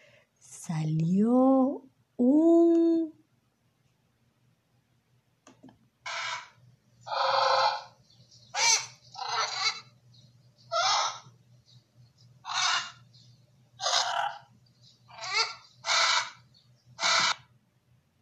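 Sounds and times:
faint low hum: 0.0 - 18.2
speech: 0.7 - 2.8
parrot squawking: 6.0 - 10.0, 10.7 - 11.3, 12.4 - 13.1, 13.8 - 14.5, 15.1 - 17.5.

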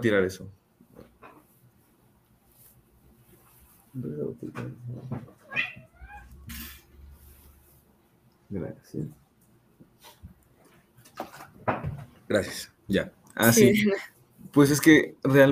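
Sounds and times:
speech: 0.0 - 0.6, 4.0 - 5.8, 8.5 - 9.2, 11.7 - 15.5
cat meowing: 5.4 - 6.5.

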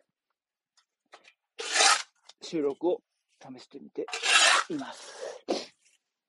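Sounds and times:
shovel scraping harshly through compost while turning it over: 1.6 - 2.2, 4.1 - 5.4
speech: 2.5 - 5.6.

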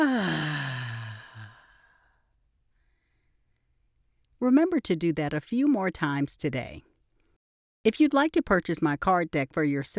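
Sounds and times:
loud voiced exhale through the mouth during a deep-breathing exercise: 0.0 - 1.7
speech: 4.4 - 6.9, 7.8 - 9.9.

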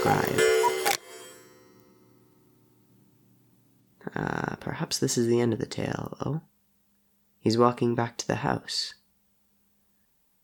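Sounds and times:
speech: 0.0 - 0.6, 4.1 - 6.5, 7.4 - 9.0
clock chime striking: 0.0 - 2.2.

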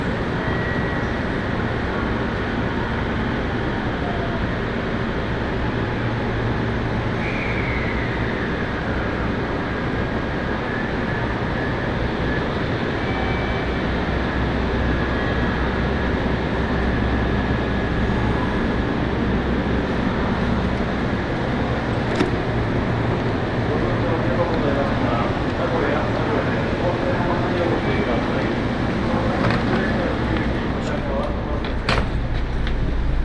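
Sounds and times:
local passenger train on the Tokaido Main Line rolling along the rails: 0.0 - 33.2
faint squeals: 0.4 - 1.2, 7.1 - 9.2.

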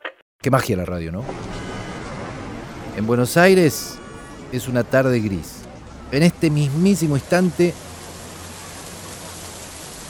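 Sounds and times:
speech: 0.4 - 1.7, 3.0 - 7.8
heavy rain falling on a river: 2.1 - 10.0.

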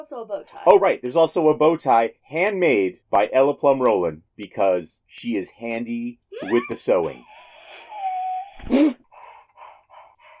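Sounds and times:
speech: 0.0 - 7.8, 8.6 - 9.0
young child whimpering and squealing in fright at a spider: 6.3 - 9.0.

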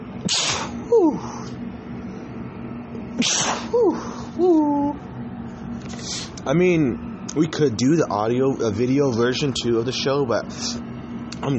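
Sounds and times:
faint steady hum: 0.0 - 11.5
person sneezing: 0.3 - 1.5, 3.2 - 4.3
speech: 0.3 - 1.6, 3.7 - 5.0, 6.4 - 11.5.

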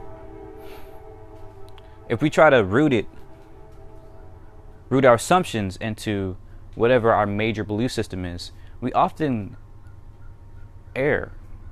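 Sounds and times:
train horn blaring: 0.0 - 8.8
low rumble of a passing train: 0.0 - 11.7
speech: 2.1 - 3.2, 4.9 - 9.6, 11.0 - 11.4.

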